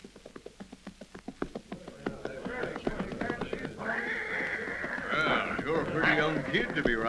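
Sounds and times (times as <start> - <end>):
rapid hoofbeats of a western pony galloping: 0.0 - 7.0
horse whinnying shrilly at a relay station: 2.1 - 7.0
speech: 6.0 - 7.0.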